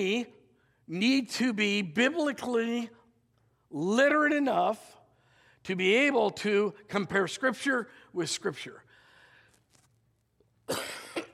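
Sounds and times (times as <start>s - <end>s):
speech: 0.0s - 3.0s, 3.7s - 5.0s, 5.6s - 8.8s, 10.7s - 10.9s
loud harsh cough: 10.7s - 11.3s.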